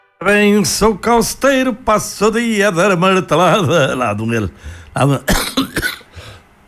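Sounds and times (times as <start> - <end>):
speech: 0.2 - 6.0
man coughing in harsh bursts: 5.2 - 6.3.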